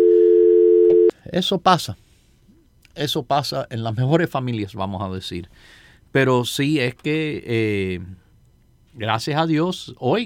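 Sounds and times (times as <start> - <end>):
telephone dial tone after a dropped call: 0.0 - 1.1
speech: 1.3 - 2.0, 3.0 - 8.2, 9.0 - 10.2.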